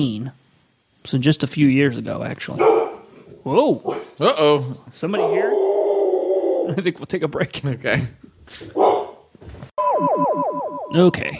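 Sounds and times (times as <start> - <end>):
speech: 0.0 - 0.4, 1.0 - 2.8, 3.4 - 5.5, 6.7 - 8.8, 10.9 - 11.3
dog barking and yelping: 2.6 - 3.0, 5.1 - 6.7, 8.8 - 9.2.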